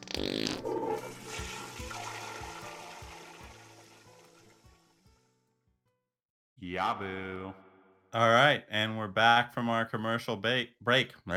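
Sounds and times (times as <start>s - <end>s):
toilet flushing: 0.8s - 4.9s
speech: 6.7s - 11.3s.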